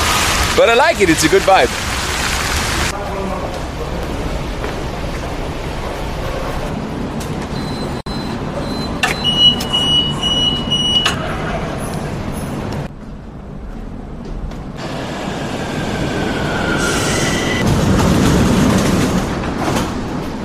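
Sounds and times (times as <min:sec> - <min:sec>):
dense street traffic: 0:00.0 - 0:20.4
speech: 0:00.6 - 0:01.8
metro train rumbling through Tudor Vladimirescu metro station in Romania: 0:01.8 - 0:07.6, 0:11.2 - 0:20.4.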